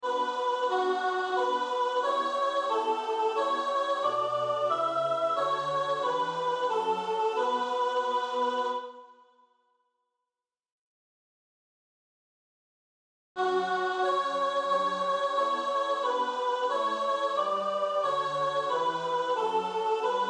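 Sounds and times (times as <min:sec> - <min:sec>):
soprano singing: 0:00.0 - 0:09.0, 0:13.4 - 0:20.2.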